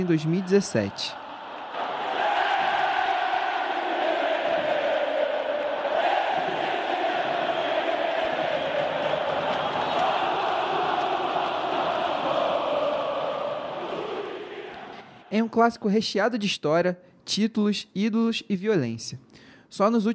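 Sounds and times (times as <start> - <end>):
speech: 0.0 - 1.2, 15.5 - 20.1
huge stadium crowd of football supporters singing a chant: 0.0 - 15.4.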